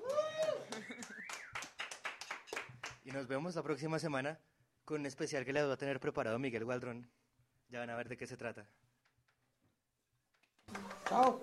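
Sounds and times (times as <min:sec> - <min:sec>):
audience applause: 0:00.0 - 0:03.0, 0:10.7 - 0:11.4
scattered hand claps: 0:00.0 - 0:03.3, 0:10.3 - 0:11.4
speech: 0:03.1 - 0:08.8, 0:10.7 - 0:11.4.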